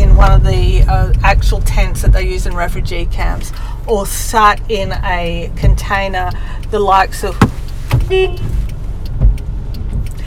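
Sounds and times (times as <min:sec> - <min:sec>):
road and engine rumble: 0:00.0 - 0:10.2
speech: 0:01.6 - 0:08.6
car horn beeping: 0:07.3 - 0:08.6.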